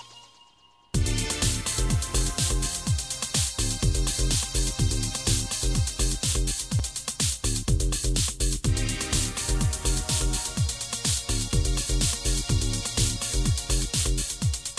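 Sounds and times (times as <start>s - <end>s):
low frequency oscillator: 1.0s - 3.0s, 3.6s - 6.9s, 7.4s - 10.7s, 11.3s - 14.4s.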